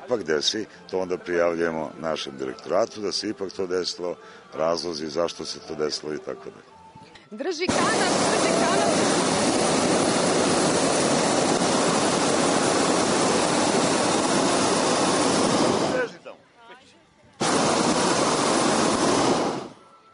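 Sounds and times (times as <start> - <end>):
speech: 0.1 - 9.4
hot air balloon burner roaring during takeoff: 7.7 - 16.1, 17.4 - 19.8.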